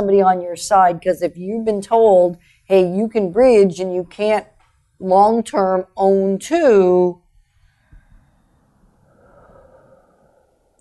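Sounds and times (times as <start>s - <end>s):
speech: 0.0s - 7.2s
heavy breathing into the microphone: 7.5s - 10.7s.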